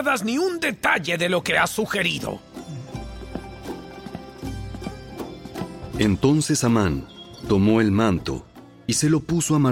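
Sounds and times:
speech: 0.0s - 2.5s, 6.0s - 9.7s
ridden horse hooves clip-clopping at a walk through a city square: 2.8s - 6.4s.

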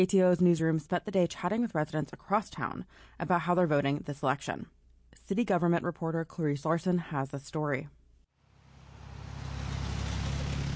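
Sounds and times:
speech: 0.0s - 8.0s
car passing on a wet road in the rain: 8.4s - 10.7s.

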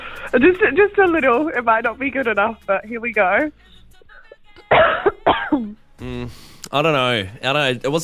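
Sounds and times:
speech: 0.3s - 3.8s, 4.8s - 8.0s
forceful phlegmy cough: 4.7s - 5.8s.

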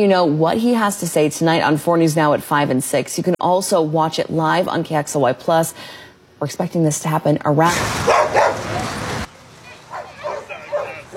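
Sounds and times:
speech: 0.0s - 8.2s
broadband splashing noise at a pool: 7.6s - 11.1s
dogs barking and yipping at a pool: 8.0s - 9.0s, 9.8s - 11.1s.

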